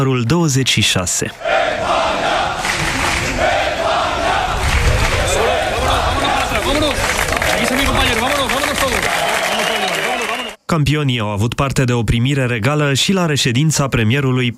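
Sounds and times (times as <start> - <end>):
speech: 0.0 - 2.3, 10.7 - 14.5
large crowd of fans cheering and shouting: 1.4 - 10.6
crowd of fans applauding: 2.6 - 3.4, 4.6 - 10.6.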